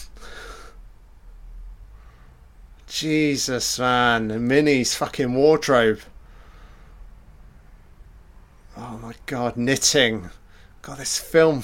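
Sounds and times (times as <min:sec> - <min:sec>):
person sniffing: 0:00.0 - 0:00.8
speech: 0:02.9 - 0:06.1, 0:09.2 - 0:11.6.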